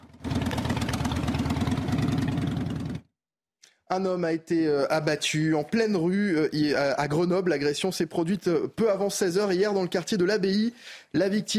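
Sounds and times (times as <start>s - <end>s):
motorcycle engines revving: 0.0s - 3.0s
speech: 3.9s - 11.5s.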